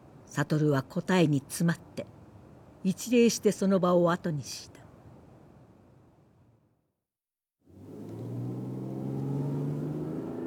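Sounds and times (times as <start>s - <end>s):
speech: 0.4s - 2.2s, 2.8s - 4.8s
car engine rumbling while driven and picking up speed: 7.7s - 10.4s.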